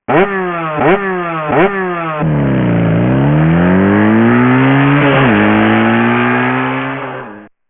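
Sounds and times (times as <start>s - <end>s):
motorcycle: 0.0s - 7.6s.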